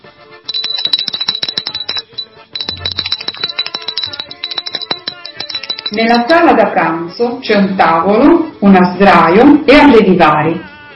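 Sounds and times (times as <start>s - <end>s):
doorbell ringing: 0.5s - 6.5s
speech: 5.9s - 10.7s.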